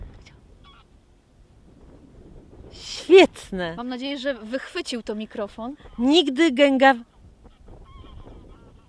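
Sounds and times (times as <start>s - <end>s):
steady low rumble of wind noise: 0.0s - 8.8s
greylag geese honking while flying overhead: 0.6s - 1.0s, 7.1s - 8.8s
speech: 3.1s - 7.1s.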